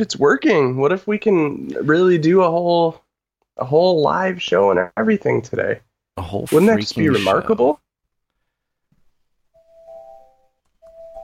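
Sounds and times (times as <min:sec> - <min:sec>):
speech: 0:00.0 - 0:03.0, 0:03.6 - 0:07.8
electronic doorbell chime: 0:09.6 - 0:11.2.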